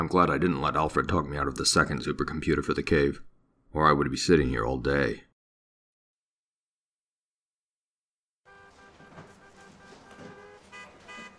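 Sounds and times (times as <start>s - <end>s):
speech: 0.0s - 5.3s
car horns honking in a traffic jam: 8.5s - 11.3s
rumble of stalled traffic backed up from bridges into downtown: 8.5s - 11.3s.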